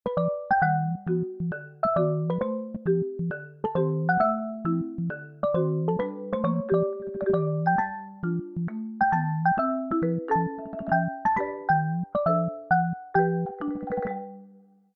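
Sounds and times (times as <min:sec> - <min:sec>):
xylophone ringtone on a Samsung Galaxy Z Fold 7: 0:00.1 - 0:14.6.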